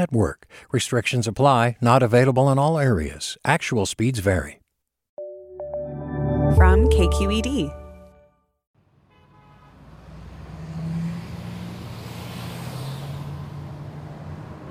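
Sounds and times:
speech: 0.0 - 4.6, 6.5 - 7.8
car horn blast: 9.0 - 9.9
freeway traffic roar with engines rumbling past: 9.4 - 14.6.

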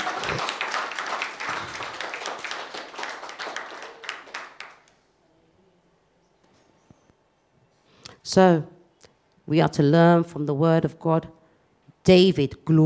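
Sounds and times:
audience clapping hands during a sermon: 0.0 - 5.0
speech: 8.3 - 8.7, 9.5 - 11.4, 12.0 - 12.8.

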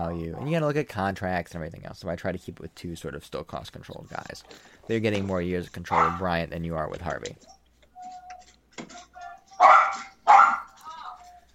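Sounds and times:
speech: 0.0 - 7.6
dog barking: 5.9 - 6.2, 9.6 - 10.8.

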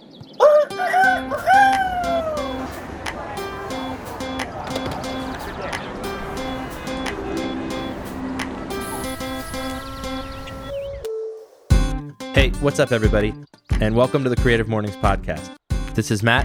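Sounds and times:
rooster crowing: 0.4 - 2.7, 8.7 - 11.0
repeated low tones in urban background: 1.2 - 12.6
speech: 12.6 - 16.4.

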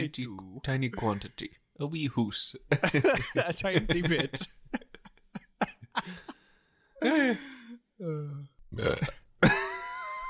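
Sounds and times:
speech: 0.1 - 4.6, 7.0 - 9.2
loud burps and long croaking belches: 8.7 - 9.6.

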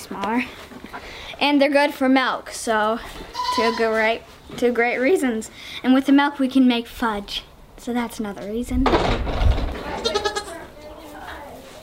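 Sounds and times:
speech: 0.1 - 9.4
little goats bleating: 3.4 - 4.0, 10.0 - 10.6.

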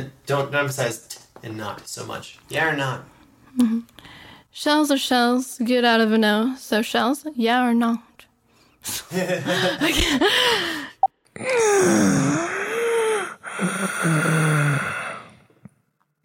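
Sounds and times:
speech: 0.0 - 8.1, 8.8 - 12.6, 13.6 - 14.6
laughter: 9.0 - 10.4
heavy strained breathing with groaning and gasping: 10.3 - 15.7.

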